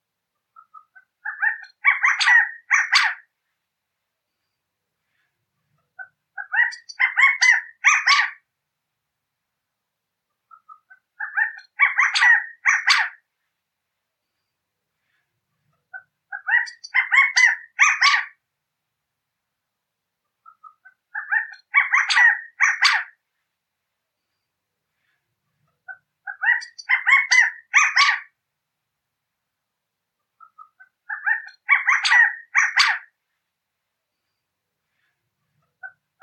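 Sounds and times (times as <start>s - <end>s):
California quail calling: 0.5s - 3.3s, 6.0s - 8.4s, 10.5s - 13.2s, 15.9s - 18.4s, 20.4s - 23.2s, 25.8s - 28.4s, 30.4s - 33.2s, 35.7s - 36.2s.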